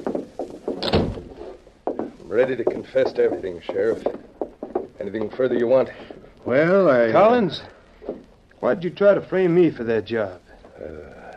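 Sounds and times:
shuffling: 0.0 - 9.6
door being pushed shut: 0.8 - 1.4
speech: 2.3 - 4.2, 5.0 - 7.8, 8.6 - 11.0.

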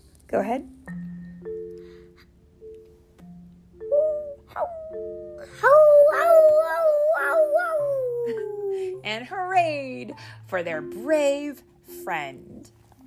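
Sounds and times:
speech: 0.3 - 1.0, 9.1 - 12.8
people imitating dogs howling: 3.9 - 9.0.

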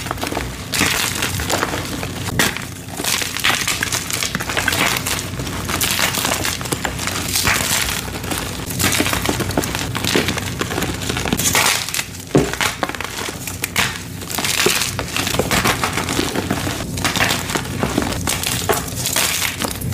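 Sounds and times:
gym chalk being crushed and crumbled: 0.0 - 19.9.

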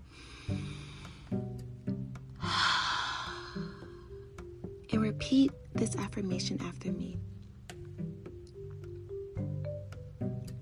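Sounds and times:
single slow deep breath: 0.0 - 1.4, 2.4 - 4.4
soft low musical notes: 0.0 - 10.6
speech: 5.3 - 7.4.

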